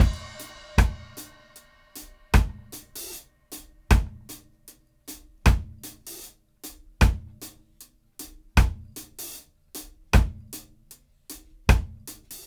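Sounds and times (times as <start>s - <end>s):
reggae dub drum loop: 0.0s - 4.3s, 5.2s - 7.5s, 8.2s - 10.6s.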